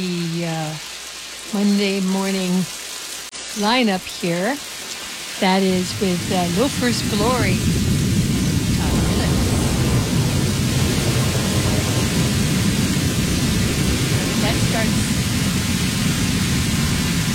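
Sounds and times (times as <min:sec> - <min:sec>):
rain pouring: 0:00.0 - 0:17.3
speech: 0:01.5 - 0:02.8, 0:03.6 - 0:04.7, 0:05.4 - 0:07.8
thunderstorm rumble: 0:05.4 - 0:17.3.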